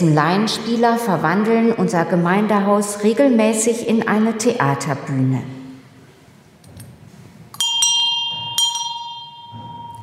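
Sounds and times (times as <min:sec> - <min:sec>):
speech: 0:00.0 - 0:05.6
small sacristy door bell of a Protestant church ringing: 0:07.6 - 0:10.0.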